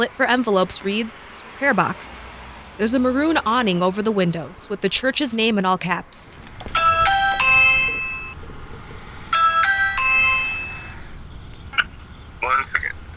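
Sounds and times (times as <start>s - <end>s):
speech: 0.0s - 6.5s
multi-note doorbell chime at a church door: 6.8s - 8.4s, 9.3s - 11.0s.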